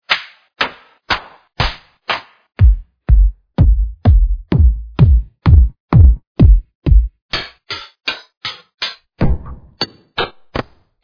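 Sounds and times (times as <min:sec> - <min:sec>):
studio drums: 0:00.7 - 0:08.6.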